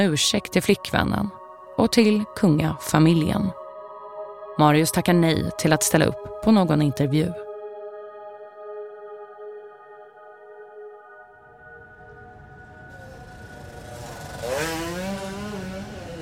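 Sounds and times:
speech: 0.0s - 3.6s, 4.6s - 7.4s
motorcycle engine riding along a road: 11.7s - 16.2s.

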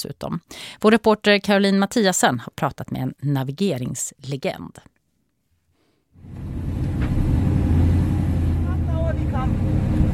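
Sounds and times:
speech: 0.0s - 4.9s
car engine roaring at 150 km per hour over high sand dunes: 6.2s - 10.1s.

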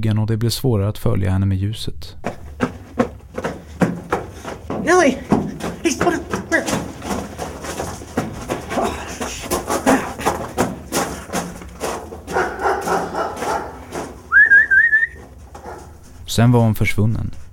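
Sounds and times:
speech: 0.0s - 2.4s, 4.8s - 6.7s, 16.4s - 17.4s
shuffling movement noise: 2.3s - 17.5s
person whistling to call a dog: 14.3s - 15.2s.

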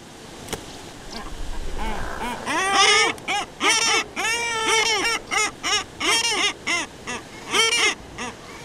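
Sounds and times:
faint rumble: 0.8s - 6.0s
agitated Common Guillemot growling calls in the breeding colony: 1.0s - 6.6s.

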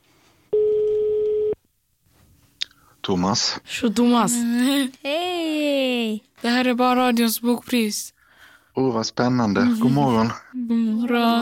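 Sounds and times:
electronic ringback tone of an outgoing phone call: 0.5s - 1.6s
speech: 3.1s - 5.2s, 6.7s - 8.2s, 8.8s - 11.4s.

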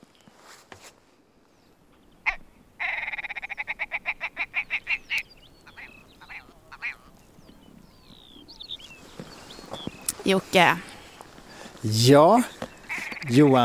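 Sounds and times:
wild willow ptarmigan giving a laughing call in mountains: 2.3s - 7.2s, 12.8s - 13.6s
speech: 10.3s - 10.9s, 11.8s - 12.6s, 13.3s - 13.6s.

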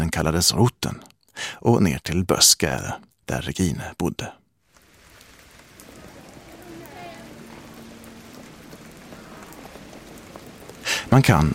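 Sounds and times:
speech: 0.2s - 4.4s, 11.1s - 11.5s
rain pattering on a hard city street in Copenhagen: 4.6s - 11.5s
faint low hum of city traffic in Copenhagen: 4.9s - 11.5s.

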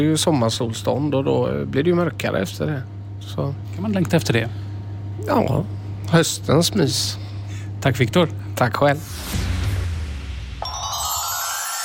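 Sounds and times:
speech: 0.0s - 4.6s, 5.2s - 9.5s
telephone ringing: 10.6s - 11.8s.

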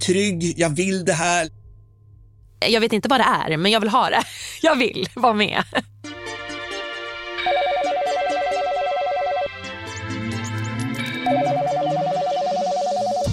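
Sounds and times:
speech: 0.0s - 1.6s, 2.6s - 6.0s
low hum of music-like tones: 0.0s - 6.1s
telephone ringing with an electronic trill in a home: 7.3s - 13.3s.

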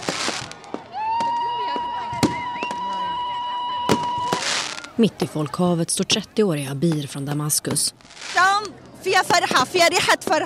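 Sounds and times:
fireworks banging: 0.0s - 5.0s, 6.7s - 10.4s
steady high whistling tone: 2.2s - 4.8s
speech: 5.0s - 10.4s.

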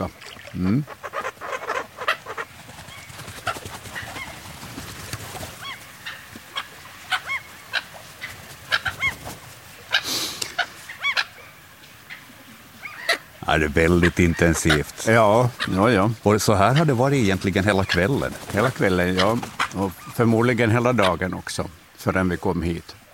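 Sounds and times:
speech: 0.0s - 1.0s, 13.5s - 23.0s
gulls calling outdoors by a stream in the evening: 0.0s - 23.1s
steady noise: 0.0s - 23.1s
flapping or rustling: 1.1s - 10.9s, 16.8s - 20.4s.

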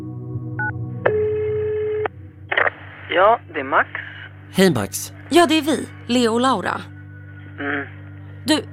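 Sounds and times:
longer steady telephone line tone: 0.6s - 2.2s
speech: 3.2s - 6.9s, 7.6s - 8.7s.

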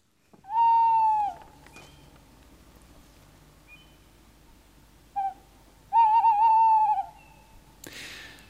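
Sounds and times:
Tawny Owl hooting: 0.4s - 2.0s, 5.1s - 7.6s.

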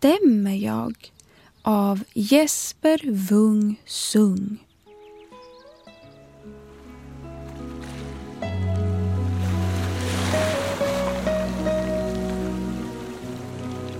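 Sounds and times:
speech: 0.0s - 4.7s
sustained gentle musical tones: 4.9s - 13.9s
ocean waves washing onto a beach: 7.4s - 13.9s.

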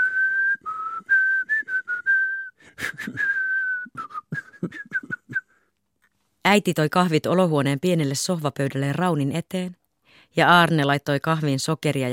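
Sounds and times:
man whistling a cheerful melody: 0.0s - 5.6s
speech: 6.5s - 9.8s, 10.4s - 12.1s.

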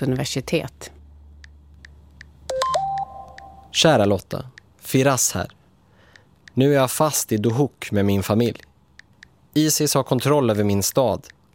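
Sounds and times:
speech: 0.0s - 1.0s, 3.8s - 5.6s, 6.6s - 8.7s, 9.5s - 11.5s
mobile phone keypad tones while typing a text message: 2.5s - 3.8s.

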